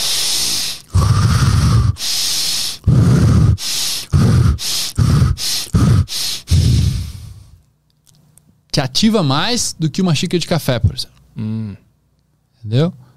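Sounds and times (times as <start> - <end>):
person breathing rapidly and forcefully with hissing inhales: 0.0 - 7.6
speech: 8.8 - 11.8, 12.6 - 13.0.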